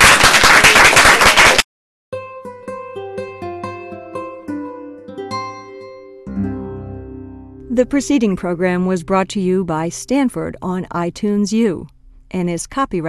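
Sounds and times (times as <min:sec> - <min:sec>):
audience applause for panelists: 0:00.0 - 0:01.6
bright melodic music cue: 0:02.2 - 0:10.2
speech: 0:07.8 - 0:13.0.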